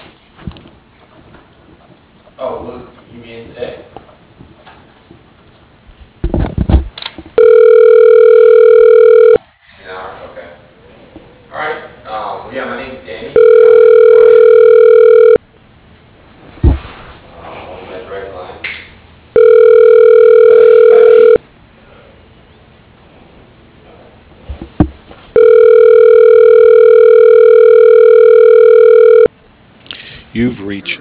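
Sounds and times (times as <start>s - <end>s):
speech: 2.4s - 4.0s
telephone ringing during call transfer: 7.4s - 9.4s, 13.4s - 15.4s, 19.4s - 21.4s, 25.4s - 29.3s.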